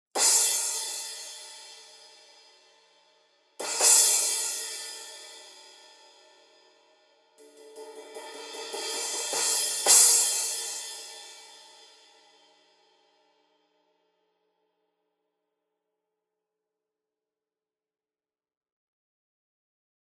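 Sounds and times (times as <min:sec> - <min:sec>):
resonant 15 crash cymbal: 0:00.2 - 0:13.2.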